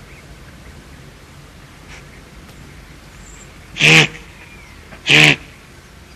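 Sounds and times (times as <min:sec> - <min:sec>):
guanaco bleating: 0:03.8 - 0:05.5.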